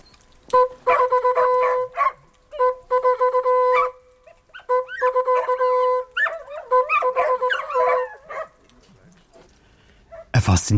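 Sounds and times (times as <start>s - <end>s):
hunting horn sounding a hunting signal: 0.5s - 8.4s.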